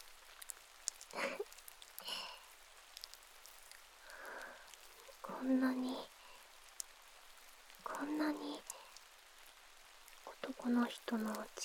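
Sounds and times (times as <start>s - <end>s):
steady rain falling outside: 0.0s - 11.6s
brief breathy noises: 1.0s - 2.6s, 3.4s - 6.8s, 7.8s - 9.1s
speech: 5.4s - 6.1s, 8.0s - 8.7s, 10.6s - 11.6s.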